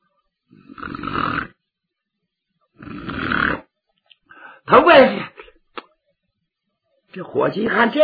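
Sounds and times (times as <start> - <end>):
storyteller imitating snoring of a sleeping man: 0.6 - 1.6, 2.8 - 3.7
speech: 4.7 - 5.3, 7.2 - 8.0.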